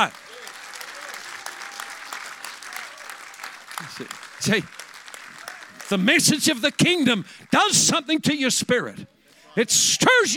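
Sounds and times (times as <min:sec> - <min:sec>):
speech: 0:00.0 - 0:00.3, 0:03.8 - 0:04.8, 0:05.9 - 0:10.3
room full of people applauding: 0:00.0 - 0:08.2.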